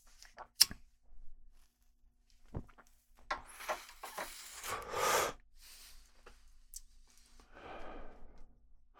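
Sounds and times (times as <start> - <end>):
exhaling smoke from a cannabis joint: 3.5 - 6.0
quiet breath sounds: 3.5 - 8.9.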